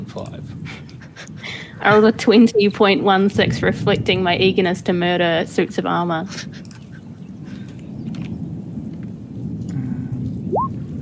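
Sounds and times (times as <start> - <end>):
speech: 0.0 - 1.0, 1.8 - 6.6
low rolling thunder: 0.0 - 11.0
steady rain: 0.0 - 11.0
brief rising whistle-like tone: 10.5 - 10.7.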